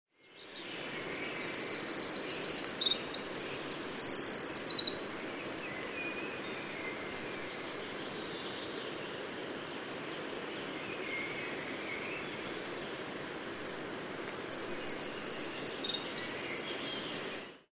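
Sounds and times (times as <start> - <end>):
steady background hiss: 0.2 - 17.7
Eurasian wren song of high trills and shrill notes: 1.0 - 5.0, 14.2 - 17.6.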